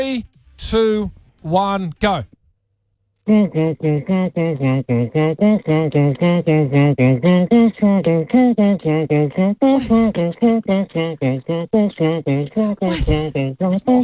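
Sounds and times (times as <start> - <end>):
speech: 0.0 - 2.4, 3.3 - 14.0
person humming a melodic song: 3.2 - 14.0
sharp breathy percussive beatboxing mouth sounds: 3.2 - 14.0.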